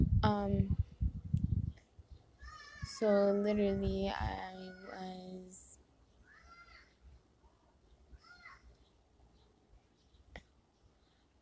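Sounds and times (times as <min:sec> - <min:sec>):
low rumbling outdoors: 0:00.0 - 0:01.8
speech: 0:00.2 - 0:00.9, 0:03.0 - 0:05.6
child screaming in the street about a ball: 0:02.4 - 0:03.0, 0:06.3 - 0:06.9, 0:08.2 - 0:08.7.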